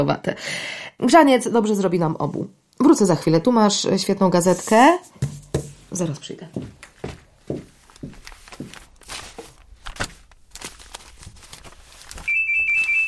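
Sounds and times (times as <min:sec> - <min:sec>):
speech: 0:00.0 - 0:06.8
hard uneven footsteps clattering: 0:05.1 - 0:09.6
loud shrill telephone ringing: 0:12.3 - 0:13.0.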